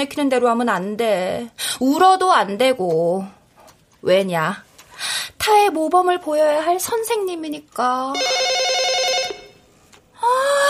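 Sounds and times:
speech: 0.0s - 3.4s, 4.0s - 4.7s, 5.5s - 8.4s
telephone ringing: 8.1s - 9.7s.

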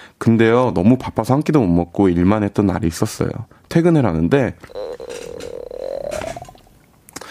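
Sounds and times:
speech: 0.2s - 4.8s
stomach growling: 4.6s - 6.8s.

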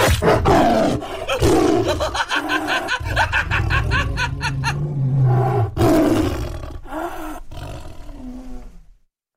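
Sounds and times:
tiger roaring: 0.1s - 8.9s
person snickering and chuckling: 1.1s - 5.0s.

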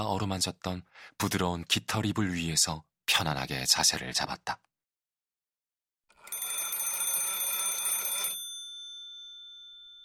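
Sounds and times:
speech: 0.0s - 4.7s
old-style telephone bell ringing loudly: 6.1s - 10.0s.

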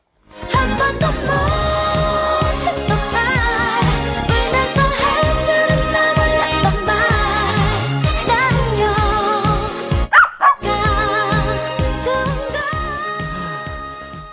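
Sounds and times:
pop song with full band and sung vocals: 0.4s - 14.3s
puppy barking: 10.1s - 10.7s.

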